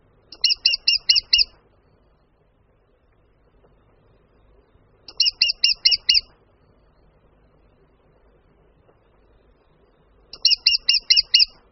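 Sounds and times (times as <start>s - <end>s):
lesser spotted woodpecker high rapid ki-ki-ki call: 0.3s - 1.5s, 5.1s - 6.3s, 10.4s - 11.6s.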